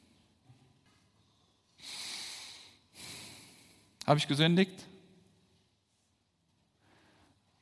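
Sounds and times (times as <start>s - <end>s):
person taking a deliberate audible breath in and out: 1.8s - 4.0s
speech: 4.1s - 4.9s.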